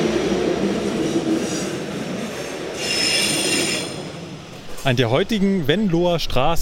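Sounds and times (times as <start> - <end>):
train rumbling past: 0.0 - 6.3
train wheels high metallic squeal: 1.0 - 4.9
speech: 4.8 - 6.6.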